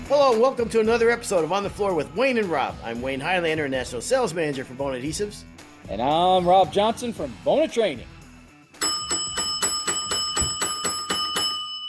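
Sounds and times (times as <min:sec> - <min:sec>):
speech: 0:00.1 - 0:08.1
bell ringing rapidly: 0:08.8 - 0:11.8.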